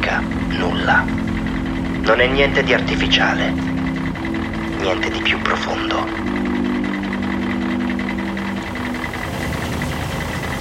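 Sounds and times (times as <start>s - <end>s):
truck engine rumbling: 0.0s - 10.5s
speech: 0.2s - 1.2s, 2.0s - 3.8s, 4.8s - 6.6s.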